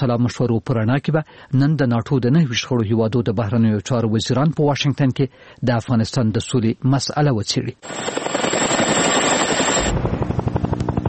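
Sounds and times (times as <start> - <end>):
speech: 0.0 - 8.4
NATO military helicopter flying over Afghanistan: 7.8 - 11.0.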